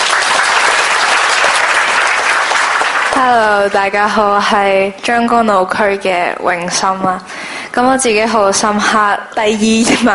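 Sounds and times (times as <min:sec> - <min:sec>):
crowd applauding at a church youth gathering: 0:00.0 - 0:03.8
speech: 0:03.2 - 0:10.1.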